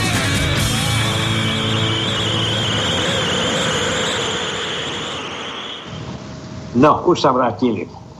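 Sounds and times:
car brakes screeching: 0.2 - 6.1
speech: 6.8 - 8.0.

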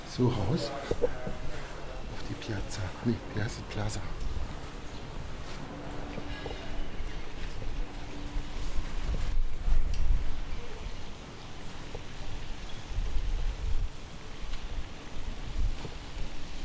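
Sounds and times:
speech: 0.2 - 1.6, 2.4 - 4.3
gusty wind buffeting the microphone outdoors on a plaza: 4.1 - 16.6.

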